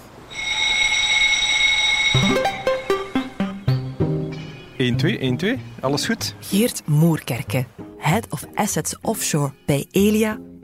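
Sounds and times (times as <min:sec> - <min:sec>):
emergency alarm on an offshore platform: 0:00.3 - 0:04.0
speech: 0:04.8 - 0:10.5.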